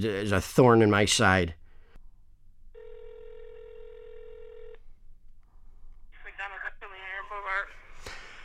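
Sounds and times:
speech: 0.0s - 1.6s
steady electronic telephone tone: 2.8s - 4.8s.

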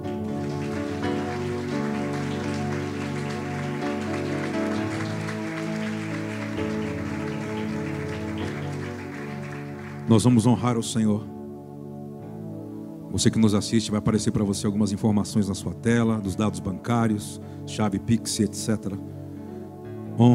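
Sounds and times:
crowd applauding: 0.0s - 10.5s
sustained keyboard chords: 0.0s - 17.0s
speech: 10.1s - 11.4s, 13.2s - 19.2s.

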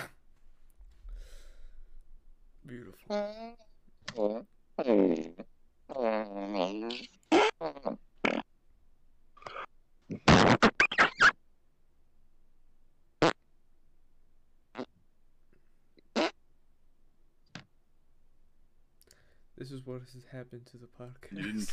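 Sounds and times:
voice imitating fart sounds with wet raspberries: 0.0s - 0.2s, 3.1s - 8.5s, 9.4s - 11.4s, 13.2s - 13.4s, 14.7s - 15.0s, 16.0s - 16.4s
speech: 2.7s - 8.0s, 19.6s - 21.7s.

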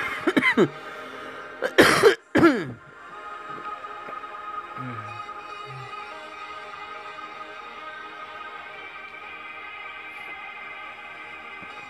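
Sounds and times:
person coughing harshly: 0.0s - 0.8s, 1.6s - 2.8s
speech: 0.6s - 0.9s
rough throaty throat clearing: 1.6s - 2.8s.

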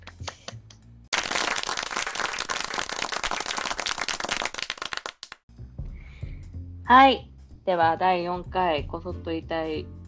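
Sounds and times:
several people clapping hands in applause: 0.0s - 5.4s
speech: 6.9s - 10.0s.

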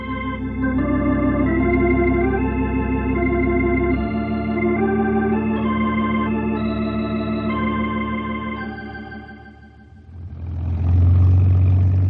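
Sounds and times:
small airplane engine droning: 0.0s - 12.0s.

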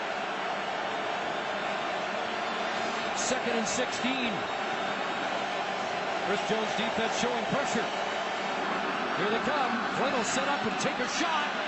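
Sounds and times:
huge stadium crowd roaring at a Canadian Football League game: 0.0s - 11.6s
speech: 3.3s - 4.6s, 6.3s - 8.0s, 9.2s - 11.6s.

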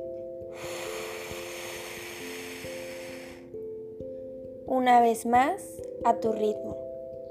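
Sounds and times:
gentle sustained music tones: 0.0s - 7.3s
deep slow breath in and out during a guided relaxation exercise: 0.4s - 3.8s
speech: 4.7s - 6.8s.

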